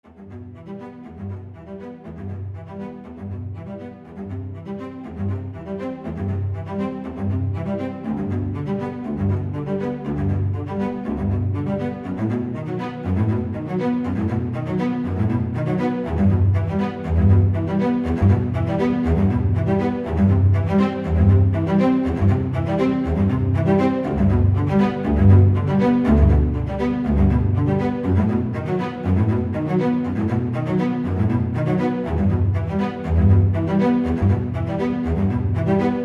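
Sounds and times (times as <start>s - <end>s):
cinematic cello arpeggio trailer music: 0.1s - 36.0s.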